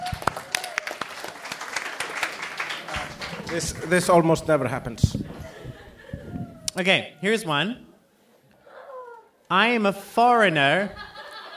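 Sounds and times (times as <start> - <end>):
audience applause: 0.0 - 5.0
laughter: 1.9 - 6.7, 10.4 - 11.5
crowd murmur: 2.0 - 6.7
speech: 3.5 - 5.5, 6.8 - 7.9, 9.5 - 11.1.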